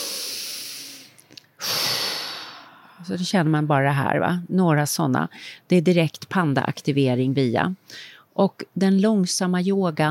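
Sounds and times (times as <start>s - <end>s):
slow deep breaths taken as a relaxation exercise: 0.0s - 3.0s
speech: 3.0s - 10.1s.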